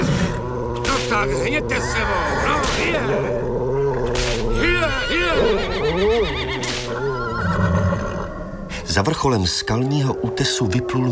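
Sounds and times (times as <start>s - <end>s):
continuous low rumbling backdrop: 0.0s - 11.1s
restless horses neighing and whinnying: 0.0s - 11.1s
speech: 1.1s - 3.6s, 4.8s - 6.5s, 9.0s - 11.1s.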